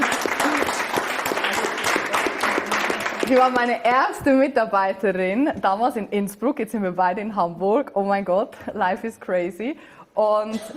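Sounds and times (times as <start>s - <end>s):
audience applause: 0.0s - 3.7s
speech: 3.3s - 10.7s.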